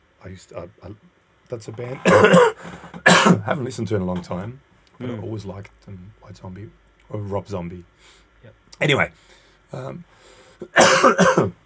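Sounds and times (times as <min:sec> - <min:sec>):
speech: 0:00.2 - 0:11.6
person coughing: 0:01.9 - 0:03.6, 0:10.6 - 0:11.6.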